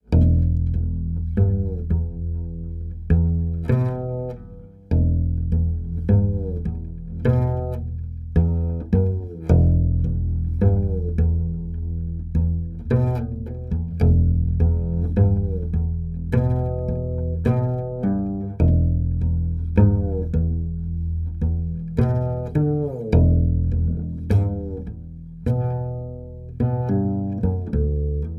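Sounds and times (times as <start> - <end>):
bass music from a game: 0.0 - 28.3.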